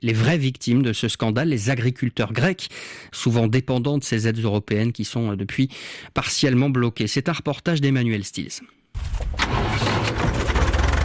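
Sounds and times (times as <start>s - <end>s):
speech: 0.0s - 9.9s
small tractor engine running: 9.4s - 11.0s.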